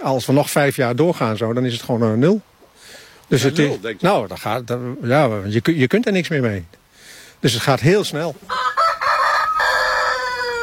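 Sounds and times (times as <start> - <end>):
speech: 0.0 - 6.8, 7.4 - 8.7
rooster kept by a small-animal breeder crowing: 8.5 - 10.6.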